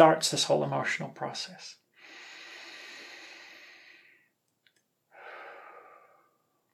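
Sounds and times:
speech: 0.0s - 1.8s
slow breathing in through the nose: 2.0s - 4.3s, 5.1s - 6.5s.

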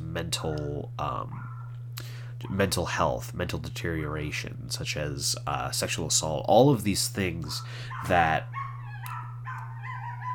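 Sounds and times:
steady low electrical hum: 0.0s - 10.3s
speech: 0.2s - 8.6s
neighbor's dog barking: 1.4s - 1.7s, 7.5s - 10.3s.

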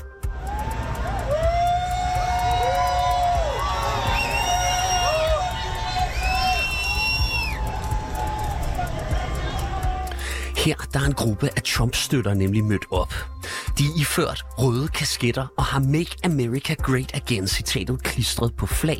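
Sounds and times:
crowd howling and jeering from the sidewalk: 0.2s - 10.2s
wailing sirens of passing vehicles: 0.3s - 10.1s
speech: 10.7s - 18.9s.

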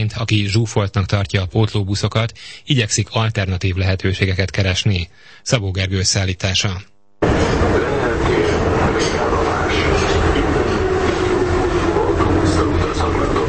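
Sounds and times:
speech: 0.0s - 9.4s
line 3 metro train rumbling into a temporary terminal station: 7.2s - 13.4s.

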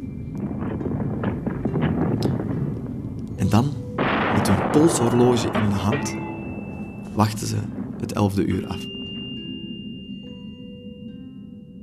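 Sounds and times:
artillery fire: 0.0s - 9.3s
crackling impacts: 0.0s - 9.7s
falling bombs: 0.0s - 9.9s
speech: 3.6s - 3.8s, 4.5s - 6.3s, 7.2s - 8.9s.

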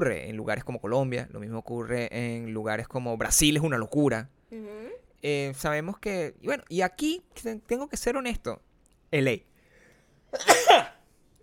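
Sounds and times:
speech: 0.0s - 9.5s, 10.3s - 11.0s
loud sneeze: 10.4s - 11.0s.

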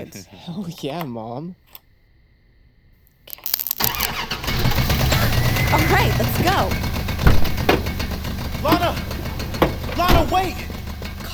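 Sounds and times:
speech: 0.0s - 1.7s, 5.7s - 7.0s, 8.6s - 9.1s, 10.0s - 10.7s
hotwired car engine with solenoid starter cranking and idling: 3.8s - 11.3s.

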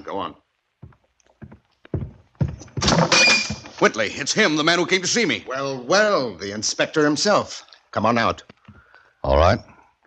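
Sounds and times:
speech: 0.1s - 0.4s, 3.8s - 8.5s, 9.2s - 9.7s
soft knocks and thumps: 0.8s - 3.8s.

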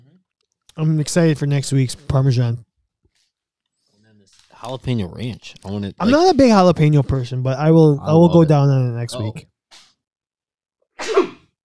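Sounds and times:
speech: 0.8s - 2.7s, 4.6s - 9.5s
sneeze: 11.0s - 11.6s.

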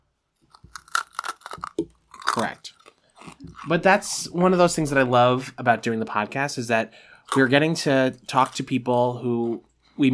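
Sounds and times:
crunching on a Taffy Crunch hard candy: 0.4s - 4.3s, 7.2s - 8.8s
speech: 2.4s - 2.8s, 3.6s - 10.1s.

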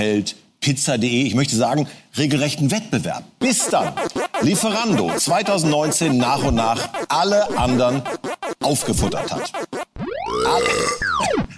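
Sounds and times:
speech: 0.0s - 9.6s
long loud burp after eating: 10.3s - 11.1s.

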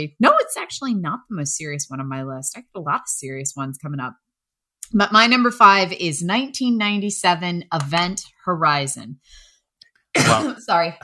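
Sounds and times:
speech: 0.0s - 4.3s, 4.9s - 9.5s, 10.1s - 11.0s
person coughing: 10.2s - 10.8s.

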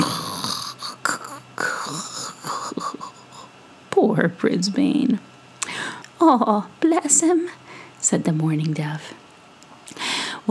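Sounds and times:
voice imitating snoring: 0.0s - 3.4s
speech: 4.1s - 5.3s, 6.2s - 9.2s.

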